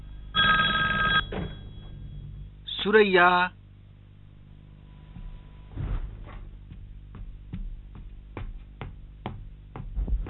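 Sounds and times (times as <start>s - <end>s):
telephone bell ringing: 0.4s - 1.9s
speech: 2.8s - 3.6s.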